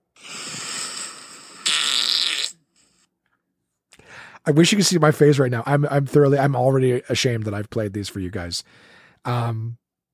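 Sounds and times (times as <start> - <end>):
loud sputtering fart sound effect: 0.2 - 2.6
speech: 4.4 - 9.8.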